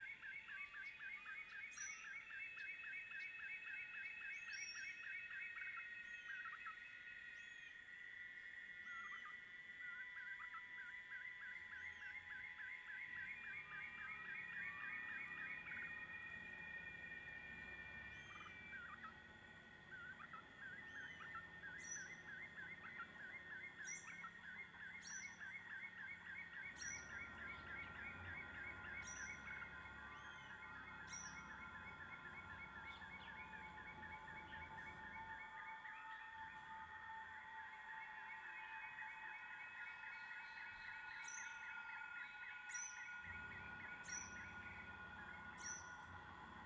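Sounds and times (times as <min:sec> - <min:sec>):
birds in rural late afternoon: 0:00.0 - 0:46.6
cicadas in rural late afternoon: 0:00.0 - 0:46.6
crickets chirping in rural late afternoon: 0:00.0 - 0:46.6
distant engine in rural area: 0:11.8 - 0:35.5, 0:43.2 - 0:46.6.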